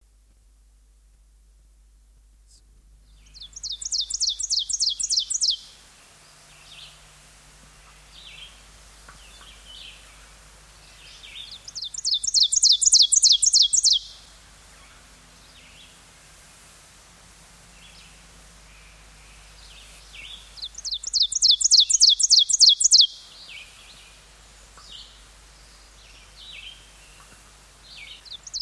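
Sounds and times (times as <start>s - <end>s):
songbirds singing: 3.0s - 16.2s, 16.8s - 28.6s
ovenbird singing: 3.1s - 5.7s, 9.2s - 16.0s, 17.8s - 24.2s, 24.8s - 28.6s.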